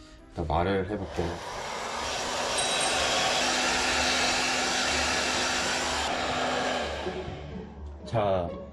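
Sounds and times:
speech: 0.4 - 1.6, 8.1 - 8.7
hair dryer blowing: 0.9 - 7.8.

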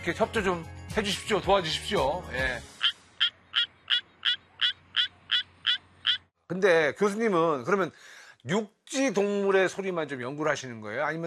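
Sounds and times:
speech: 0.0 - 2.7, 6.5 - 11.2
Suweon tree frog singing in rice paddies: 2.7 - 6.3.

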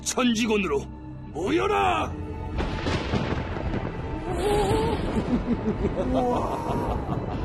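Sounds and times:
speech: 0.0 - 2.7, 4.3 - 7.4
deep rumbling thunder effect of lightning being gathered: 2.5 - 5.5
laughter: 5.1 - 7.4.

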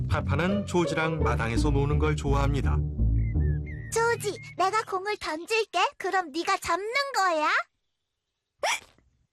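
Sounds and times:
speech: 0.2 - 3.0, 3.9 - 7.7, 8.6 - 9.0
child hiccuping: 8.6 - 9.0.

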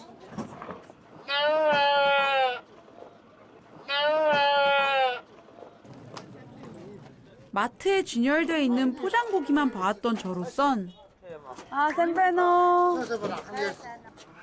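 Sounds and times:
low murmur of outdoor noise: 0.0 - 14.4
sheep and goats bleating at a livestock market: 1.2 - 2.6, 3.8 - 5.2
speech: 7.6 - 11.0, 11.7 - 14.4.

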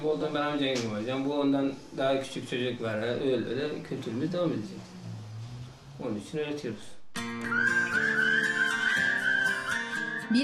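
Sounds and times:
speech: 0.0 - 4.9, 6.0 - 7.8
person whistling a cheerful bright tune: 7.4 - 10.4.

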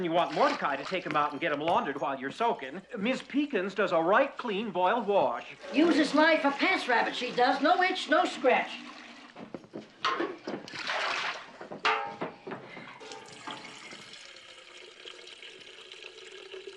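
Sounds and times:
water pouring into a bathtub: 0.0 - 1.1, 5.5 - 9.4, 10.7 - 11.5, 13.0 - 16.7
speech: 0.0 - 8.9.

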